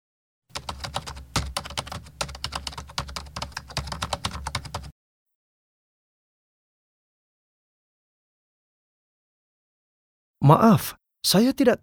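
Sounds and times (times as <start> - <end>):
rapid typing on a computer keyboard: 0.5 - 4.9
speech: 10.4 - 11.8.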